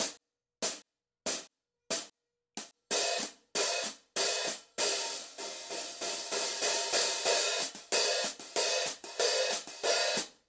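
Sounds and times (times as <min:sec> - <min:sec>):
dark hi-hat pattern: 0:02.6 - 0:10.4.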